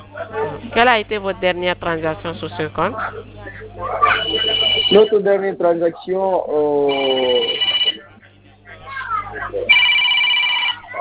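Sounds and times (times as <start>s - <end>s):
speech: 0.6s - 7.7s
phone ringing in electronic bursts: 4.0s - 5.3s, 6.8s - 8.1s, 9.7s - 10.9s.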